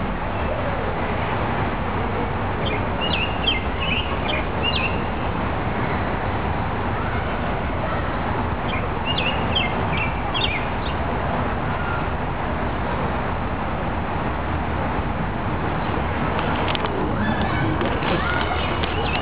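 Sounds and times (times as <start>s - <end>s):
loud rushing water at a riverside: 0.0s - 19.1s
robin singing at a riverside: 2.6s - 5.2s, 8.6s - 11.0s, 16.4s - 19.1s.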